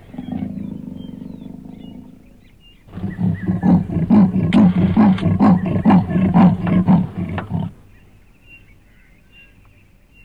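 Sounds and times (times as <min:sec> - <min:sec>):
leopard giving harsh rasping grunts: 0:00.0 - 0:08.0.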